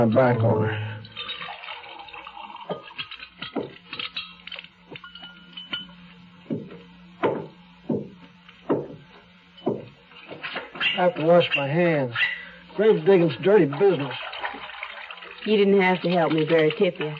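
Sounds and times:
speech: 0.0s - 0.9s, 11.0s - 14.2s, 15.4s - 17.1s
lemonade poured from a pitcher into glasses: 0.0s - 5.6s, 12.4s - 17.1s
bright glassy clinks and knocks of glasses: 1.0s - 2.0s, 2.6s - 6.6s.

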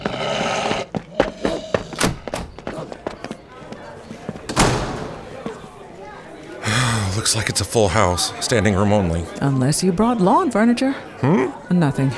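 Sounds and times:
quick uneven footsteps dashing up steps to a door: 0.0s - 4.5s
speech: 7.2s - 12.1s.

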